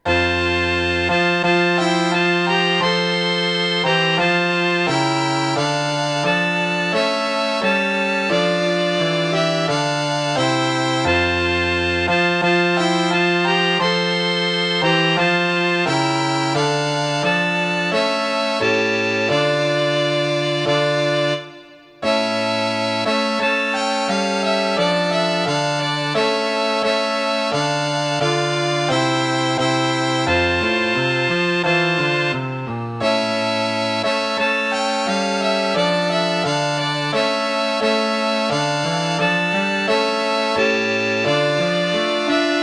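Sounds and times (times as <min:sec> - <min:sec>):
piano playing a national anthem: 0:00.0 - 0:42.6.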